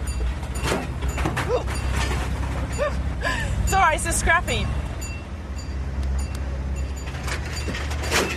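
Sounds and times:
big crane truck with newly fixed clutch running with deep engine rumble: 0.0 - 8.3
crane truck mechanical squeaks and creaks: 0.0 - 8.3
speech: 3.9 - 4.8.

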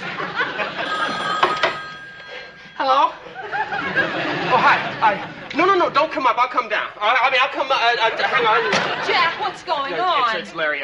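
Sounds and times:
laughter: 0.0 - 1.6, 3.0 - 6.0, 7.7 - 10.4
telephone ringing with trilling electronic tone: 0.4 - 4.2
speech: 6.2 - 10.8.

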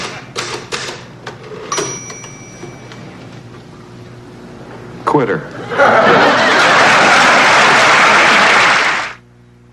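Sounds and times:
typewriter carriage return bell: 1.7 - 3.1
speech: 5.1 - 6.0
laughter: 5.5 - 9.2.

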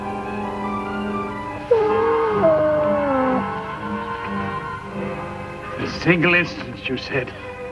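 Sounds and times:
steady low droning background: 0.1 - 4.2
poisoned dog howling and whimpering: 1.6 - 3.9
speech: 6.1 - 7.5.

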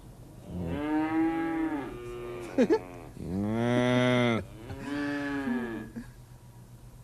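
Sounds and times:
cow mooing: 0.5 - 6.0.

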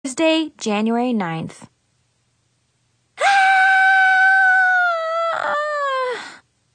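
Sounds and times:
speech: 0.1 - 1.7
person screaming in frustration: 3.2 - 6.2.

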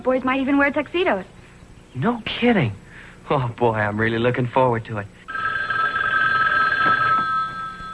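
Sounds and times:
speech: 0.0 - 5.2
telephone bell ringing: 5.3 - 7.9.

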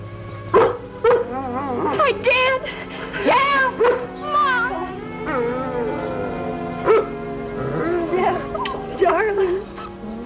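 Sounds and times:
low steady hum: 0.0 - 10.2
dog barking: 0.6 - 1.3, 3.8 - 4.2, 6.8 - 7.2
speech: 2.1 - 4.1.

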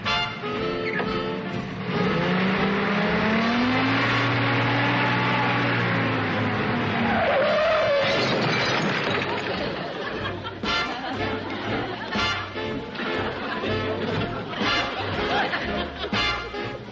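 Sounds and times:
jeep engine roar: 0.0 - 8.2
jeep tires skidding and squealing: 1.8 - 9.3
laughter: 8.9 - 16.7.

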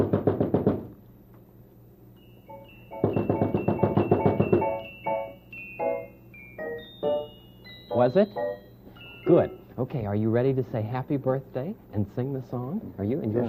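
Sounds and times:
quick rapid knocking on a door: 0.0 - 0.9, 3.0 - 4.8
ringing tonal notes: 2.2 - 9.9
speech: 8.0 - 8.5, 9.2 - 13.4.

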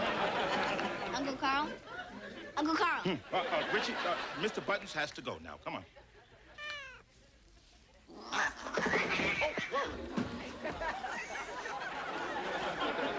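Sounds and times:
laughter: 0.0 - 2.6, 3.2 - 5.0, 8.6 - 13.1
speech: 1.4 - 1.9, 2.6 - 6.0
stray cat yowling and screeching: 6.6 - 7.0
stray cat meowing: 6.6 - 7.1.

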